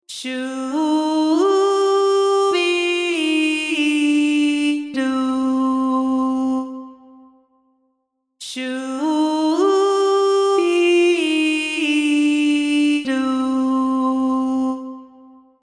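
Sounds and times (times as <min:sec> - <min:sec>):
voice singing legato vowel: 0:00.1 - 0:07.4, 0:08.4 - 0:15.4.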